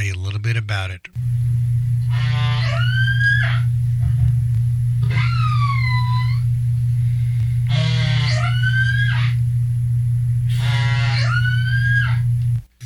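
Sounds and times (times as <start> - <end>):
electrical hum: 0.0 - 12.8
speech: 0.4 - 1.5
killer whale calls: 2.0 - 3.8, 5.0 - 6.5, 7.6 - 9.5, 10.5 - 12.3.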